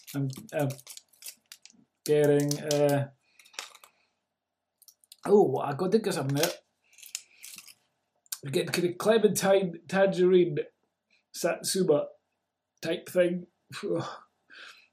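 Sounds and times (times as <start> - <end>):
wrapping paper crinkling: 0.0 - 4.0, 6.2 - 7.9
speech: 0.1 - 1.0, 2.1 - 3.2, 5.2 - 6.6, 8.4 - 10.8, 11.4 - 12.2, 12.8 - 14.7.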